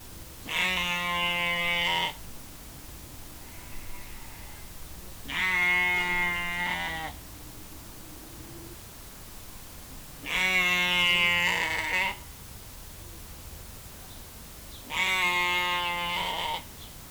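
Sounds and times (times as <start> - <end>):
adult female domestic sheep Ovis ammon f. aries calling loudly, separated from group: 0.4 - 2.3, 3.4 - 7.2, 10.2 - 12.2, 14.9 - 16.7.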